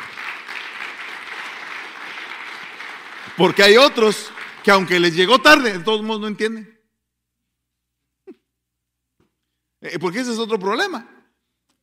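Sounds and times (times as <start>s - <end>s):
large group applauding: 0.0s - 6.0s
speech: 3.4s - 6.8s, 9.8s - 11.2s.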